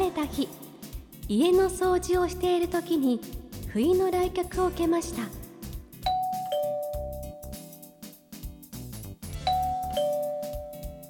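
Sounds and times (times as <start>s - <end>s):
gentle music: 0.0s - 11.0s
speech: 0.3s - 0.6s, 1.3s - 5.4s
intercom doorbell two-tone ding-dong chime: 6.1s - 7.6s, 9.5s - 11.0s.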